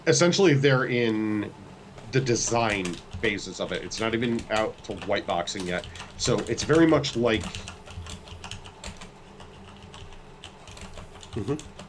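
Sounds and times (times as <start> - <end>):
speech: 0.1 - 7.8, 11.4 - 11.7
typing on a computer keyboard: 2.4 - 11.8.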